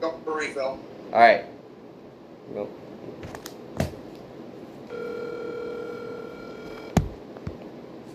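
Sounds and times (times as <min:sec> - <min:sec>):
faint noise: 0:00.0 - 0:08.1
speech: 0:00.4 - 0:01.6, 0:02.5 - 0:03.4
phone ringback tone through a handset: 0:04.9 - 0:07.0.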